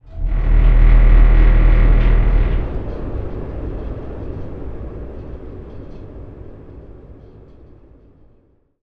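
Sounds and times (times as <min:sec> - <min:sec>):
room ventilation metal rumble: 0:00.0 - 0:08.6.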